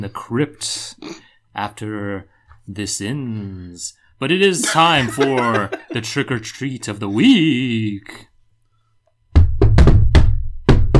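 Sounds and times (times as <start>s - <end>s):
speech: 0.0s - 8.3s
laughter: 4.6s - 7.6s
jaunty rhythmic knocking on a door: 9.3s - 10.9s.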